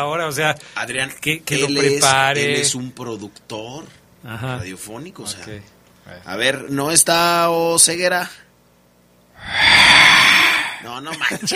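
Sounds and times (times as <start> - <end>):
speech: 0.0 - 8.4, 10.8 - 11.5
heavy breathy exhale blown into a microphone: 9.4 - 11.0.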